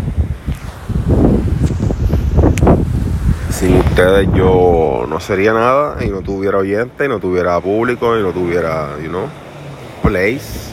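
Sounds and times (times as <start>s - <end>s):
wind buffeting the microphone: 0.0s - 8.5s
low churning roar of ocean surf: 0.0s - 10.7s
speech: 4.0s - 9.4s, 10.0s - 10.7s.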